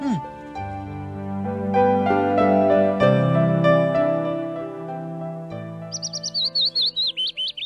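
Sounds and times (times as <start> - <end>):
sustained instrumental music: 0.0 - 7.6
small bird chirping and singing with a rapid warbling trill: 5.9 - 7.6.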